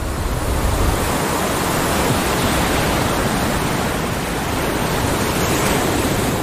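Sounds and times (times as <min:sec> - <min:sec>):
ocean waves breaking on a beach on a remote coastline of Costa Rica: 0:00.0 - 0:06.4.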